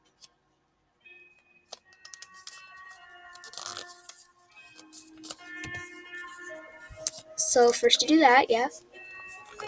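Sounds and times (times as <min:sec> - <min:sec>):
paper being folded and creased by hand: 0:03.3 - 0:07.2
speech: 0:07.6 - 0:08.9.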